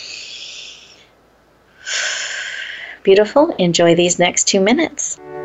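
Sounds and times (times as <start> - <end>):
deep breath during a guided relaxation exercise: 0.0 - 1.1, 1.8 - 3.0
strong breathy burst of air: 1.8 - 3.0
speech: 3.0 - 5.3.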